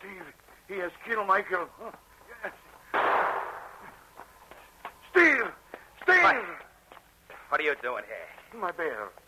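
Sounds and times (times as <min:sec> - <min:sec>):
speech: 0:00.1 - 0:02.6, 0:07.5 - 0:09.2
gunshot near a mine opening: 0:02.9 - 0:03.9.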